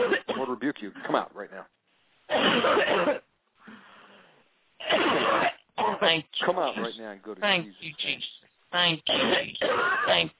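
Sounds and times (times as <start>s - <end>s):
person coughing hard: 0.0s - 0.5s, 2.3s - 3.2s, 4.8s - 6.9s, 9.1s - 10.3s
speech: 0.6s - 3.2s, 6.0s - 10.3s
softer raspy breath or wheeze: 3.6s - 4.4s.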